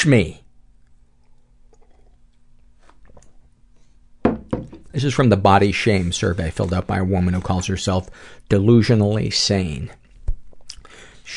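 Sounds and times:
speech: 0.0s - 0.4s, 5.0s - 10.0s
low hum: 0.0s - 11.3s
person sipping hot tea: 0.8s - 3.6s
soft mouth and swallowing sounds: 1.0s - 3.4s.

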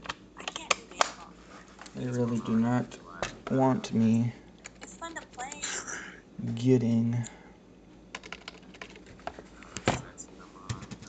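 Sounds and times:
speech: 2.0s - 4.4s, 6.4s - 7.4s
typing on a computer keyboard: 4.6s - 5.6s, 8.1s - 9.3s.

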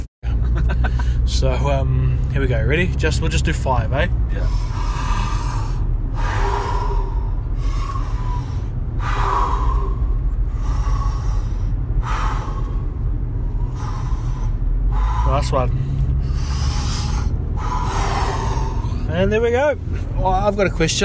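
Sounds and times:
constant low rumble: 0.3s - 21.0s
laughter: 0.4s - 1.1s
speech: 1.3s - 5.0s, 15.4s - 15.9s, 19.1s - 21.0s
deep breaths drawn in through the mouth during a breathing exercise: 4.3s - 19.1s.

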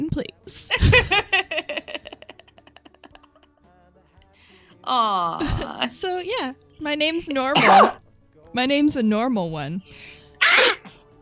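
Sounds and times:
speech: 0.2s - 1.2s, 4.9s - 10.1s
laughter: 0.7s - 3.6s
person sneezing: 7.6s - 8.0s, 10.4s - 10.9s.

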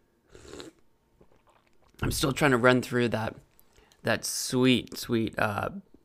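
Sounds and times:
quiet swallowing: 0.3s - 2.0s
slurping sip of coffee: 0.3s - 2.0s
speech: 2.0s - 3.4s, 4.0s - 5.9s.

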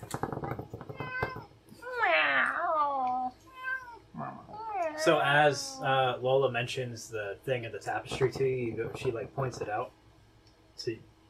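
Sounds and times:
male pet cat meowing: 0.2s - 5.9s
speech: 5.0s - 10.0s, 10.8s - 11.1s.

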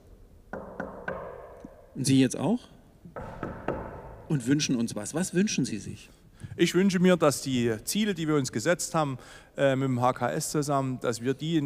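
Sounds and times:
quick firm knocks on wood: 0.5s - 1.6s, 3.1s - 4.3s
speech: 2.0s - 2.8s, 4.3s - 11.6s.

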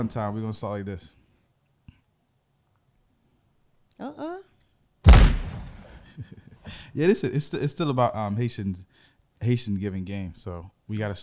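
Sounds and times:
speech: 0.0s - 1.2s, 4.0s - 4.5s, 6.2s - 11.2s
gunshot sound effect played from a soundboard: 5.1s - 6.1s.

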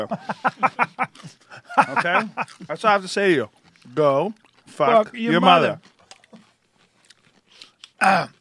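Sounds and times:
laughter: 0.0s - 2.8s
speech: 0.0s - 5.9s, 8.0s - 8.3s
chewing with wet clicks and smacks: 0.2s - 8.3s
crisp pickle being bitten: 2.4s - 2.7s, 3.6s - 4.8s, 5.8s - 8.3s.

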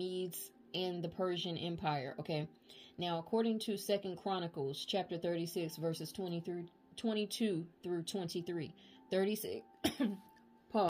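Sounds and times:
speech: 0.0s - 10.8s
person coughing from a throat irritated by incense: 9.8s - 10.3s.

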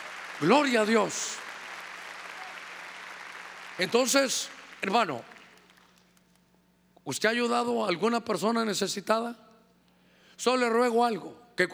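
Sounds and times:
audience clapping hands loudly: 0.0s - 6.0s
speech: 0.4s - 1.4s, 3.8s - 5.3s, 7.1s - 9.4s, 10.4s - 11.7s.

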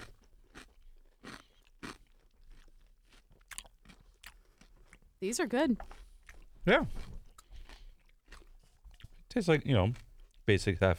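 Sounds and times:
chewing crackles of a half-sour pickle: 0.0s - 5.2s, 5.8s - 10.5s
teeth biting into a jarred half-sour pickle: 0.0s - 5.2s, 5.8s - 9.3s
speech: 5.2s - 6.0s, 6.6s - 7.0s, 9.4s - 10.9s.

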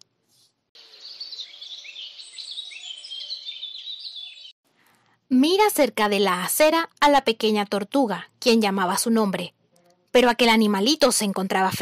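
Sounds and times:
chorus of birds chirping and twittering: 0.8s - 4.6s
speech: 5.3s - 11.8s.

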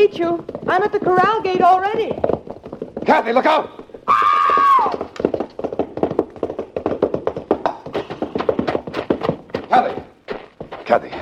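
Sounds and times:
speech: 0.0s - 2.4s, 3.0s - 5.0s, 10.9s - 11.2s
horse hooves pounding in an uneven clatter: 0.0s - 11.2s
horse whinnying: 3.9s - 5.2s.

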